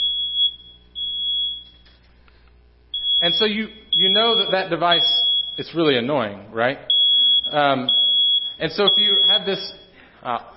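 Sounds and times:
smoke detector test alarm tone: 0.0s - 2.0s, 2.9s - 6.1s, 6.9s - 10.0s
speech: 3.2s - 6.9s, 7.5s - 8.0s, 8.6s - 10.5s.

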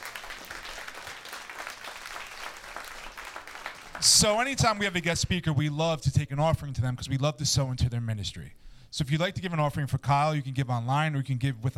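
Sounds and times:
large church audience applauding a guest speaker: 0.0s - 4.8s
speech: 4.0s - 11.7s.

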